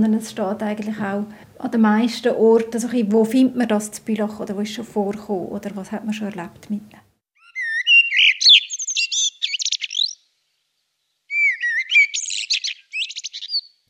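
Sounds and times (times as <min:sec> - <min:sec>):
speech: 0:00.0 - 0:07.0
Eurasian blackbird singing: 0:07.4 - 0:10.2, 0:11.3 - 0:13.8.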